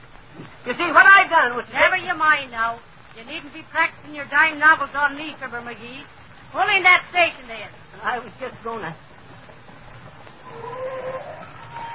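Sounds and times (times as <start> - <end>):
hiss: 0.0 - 11.9
speech: 0.6 - 9.1
car brakes squealing as it pulls into a gas station: 10.4 - 11.9.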